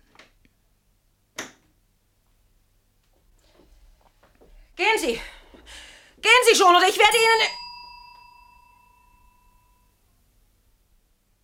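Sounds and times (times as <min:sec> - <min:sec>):
speech: 0:05.0 - 0:07.6
bell with a jamming clapper ringing: 0:06.9 - 0:10.0.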